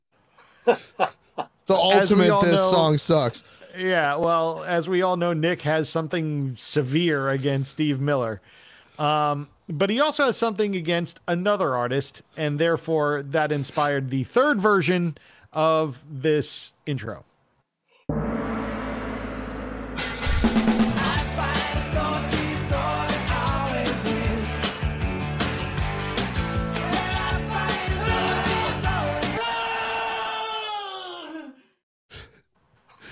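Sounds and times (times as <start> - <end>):
speech: 0.7 - 17.3
short final music hit: 18.1 - 21.8
dense driving intro music: 18.1 - 29.2
drawn-out falling vocal cry: 28.0 - 31.7
person giving a blood-curdling scream in intro music: 29.4 - 31.7.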